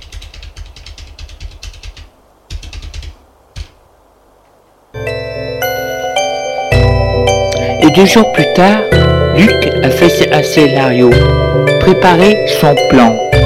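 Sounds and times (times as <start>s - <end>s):
keyboard typing as an address is entered on a computer: 0.0s - 3.8s
sustained bright tonal sound: 5.0s - 13.4s
speech: 8.0s - 13.2s.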